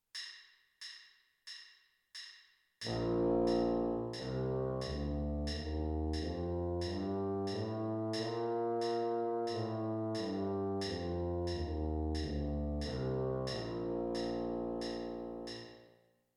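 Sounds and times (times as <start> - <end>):
tuba playing a B flat major scale: 2.9 - 15.7.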